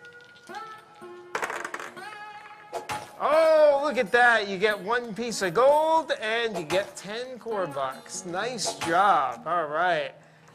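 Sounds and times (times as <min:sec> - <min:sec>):
dice clattering: 0:01.3 - 0:02.0
speech: 0:03.9 - 0:10.5.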